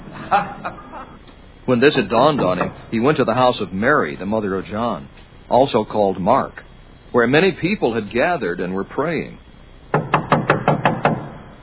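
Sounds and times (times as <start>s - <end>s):
laughter: 0.1s - 1.2s
speech: 0.3s - 9.4s
knocking on an outer entrance door: 9.9s - 11.4s.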